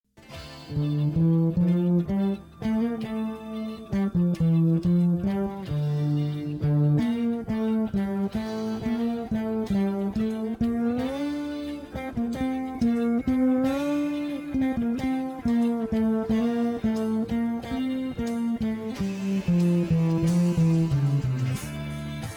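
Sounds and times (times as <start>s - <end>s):
bass track: 0.1s - 22.3s.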